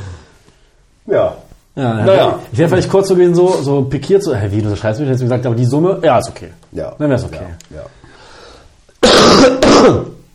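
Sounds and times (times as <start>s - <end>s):
speech: 1.1s - 8.0s, 9.4s - 10.2s
harsh cough: 9.0s - 10.2s.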